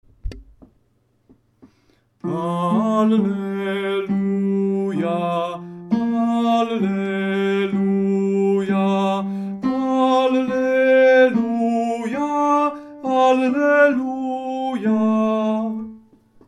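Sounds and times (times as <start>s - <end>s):
tenor singing: 2.2s - 16.2s.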